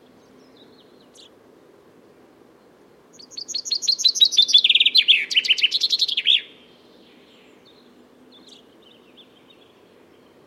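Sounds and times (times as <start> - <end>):
common chaffinch song with descending notes and final flourish: 0.0 - 1.4, 2.6 - 10.4.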